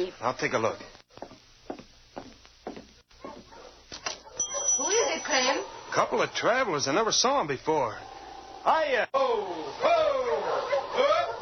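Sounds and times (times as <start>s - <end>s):
speech: 0.0s - 0.9s, 6.0s - 11.2s
sled dog team barking and yelping: 3.1s - 5.9s, 9.8s - 11.3s.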